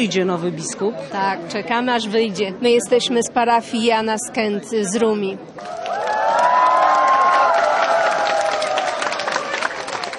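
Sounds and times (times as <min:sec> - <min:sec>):
speech: 0:00.0 - 0:06.0
people in a crowd calling and cheering: 0:05.5 - 0:10.1
large outdoor crowd of faithful outside a cathedral: 0:05.6 - 0:10.1.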